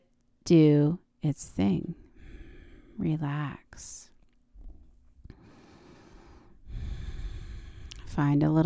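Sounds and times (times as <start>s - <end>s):
speech: 0.5s - 2.0s, 3.0s - 4.1s, 8.2s - 8.6s
slow deep breathing through the nose during a yoga relaxation exercise: 5.4s - 8.0s.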